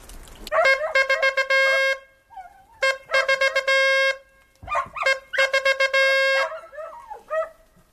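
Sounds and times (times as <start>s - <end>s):
hunting horn blowing a signal: 0.6s - 2.1s, 2.8s - 4.4s, 5.0s - 6.6s.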